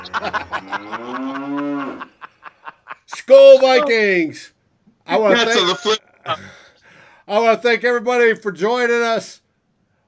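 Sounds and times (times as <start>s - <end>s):
cow mooing: 0.0s - 2.1s
laughter: 0.0s - 3.9s, 5.1s - 6.4s
speech: 0.1s - 2.1s, 3.3s - 6.6s, 7.3s - 9.4s.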